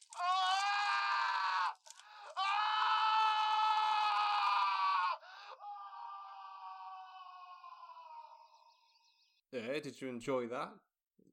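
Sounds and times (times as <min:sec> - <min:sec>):
man screaming in a played film clip: 0:00.1 - 0:08.5
speech: 0:09.5 - 0:10.9.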